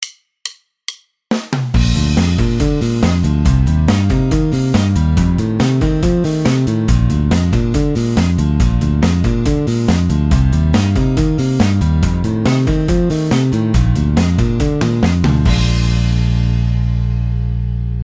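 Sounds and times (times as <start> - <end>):
bass playing arpeggio exercises: 1.8 - 18.0.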